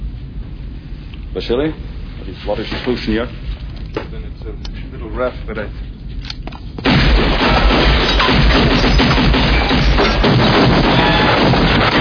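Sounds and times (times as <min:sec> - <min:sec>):
speech: 0:01.3 - 0:05.9
gunfire barrage: 0:06.8 - 0:11.9.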